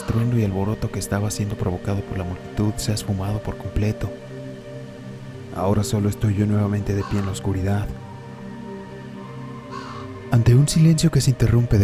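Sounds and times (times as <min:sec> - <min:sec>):
speech: 0:00.1 - 0:04.3, 0:05.6 - 0:08.0, 0:10.3 - 0:11.8
crow cawing: 0:07.0 - 0:07.5, 0:09.6 - 0:10.2.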